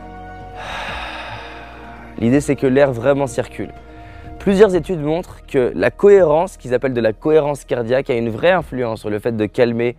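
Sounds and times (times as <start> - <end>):
person inhaling through a tensed mouth: 0.5 - 2.3, 3.8 - 4.4
speech: 2.2 - 9.9.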